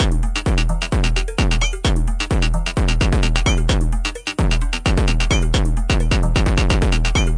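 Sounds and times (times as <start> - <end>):
130 bpm drum loops and breaks: 0.0 - 7.3.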